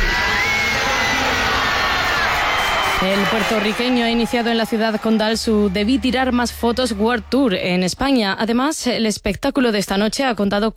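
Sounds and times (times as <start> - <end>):
whoops and yells: 0.0 - 7.3
huge stadium concert crowd cheering and roaring: 0.0 - 7.9
speech: 3.0 - 10.7.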